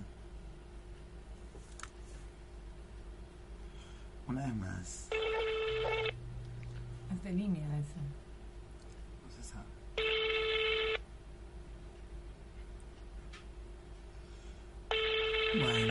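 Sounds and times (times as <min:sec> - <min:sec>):
steady low noise: 0:00.0 - 0:15.8
speech: 0:04.3 - 0:05.2, 0:07.2 - 0:08.2, 0:09.4 - 0:09.8
phone line ringback tone: 0:05.1 - 0:06.2, 0:10.0 - 0:11.0, 0:14.9 - 0:15.8.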